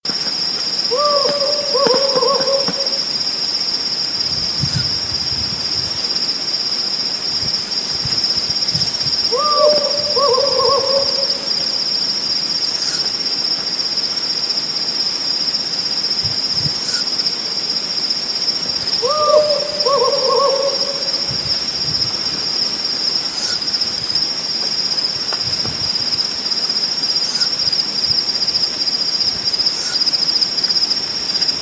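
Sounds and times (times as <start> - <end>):
Strix hadorami owl calling: 0.9 - 3.3, 9.2 - 12.0, 18.9 - 21.7.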